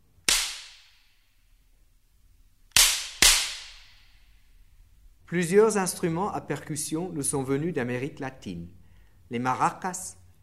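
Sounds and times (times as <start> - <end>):
hinged wooden board slapstick cracks imitating a whip crack: 0.3 - 0.9, 2.7 - 4.1
speech: 5.3 - 10.2.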